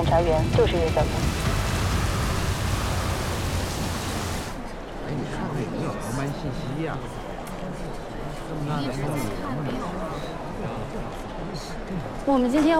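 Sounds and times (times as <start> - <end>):
low continuous rumble of thunder: 0.0 - 4.6
heavy rain: 0.0 - 4.7
speech: 0.1 - 1.4, 5.1 - 7.3, 8.5 - 12.7.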